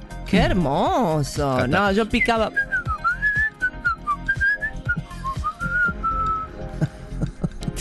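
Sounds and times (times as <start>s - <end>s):
speech: 0.3s - 2.7s
person whistling imitating a canary's song: 2.2s - 6.6s.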